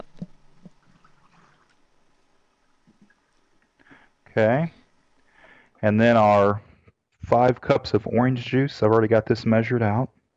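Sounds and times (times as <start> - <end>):
apple cider being poured: 0.0 - 6.0
speech: 4.4 - 4.8, 5.8 - 10.2.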